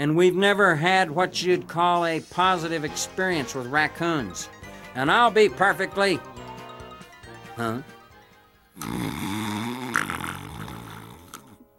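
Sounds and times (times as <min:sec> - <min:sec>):
speech: 0:00.0 - 0:06.4, 0:07.6 - 0:08.0, 0:08.8 - 0:09.4
loud rumbling snore: 0:08.8 - 0:11.7.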